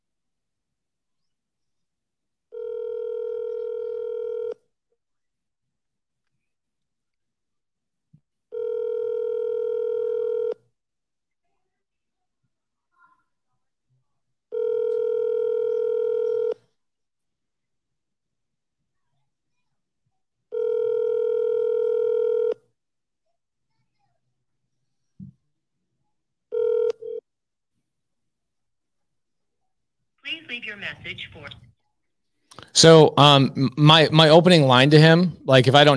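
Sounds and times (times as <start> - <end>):
telephone line tone: 2.5 - 4.6, 8.5 - 10.6, 14.5 - 16.6, 20.5 - 22.6, 26.5 - 27.2
speech: 30.3 - 31.7, 32.6 - 35.9.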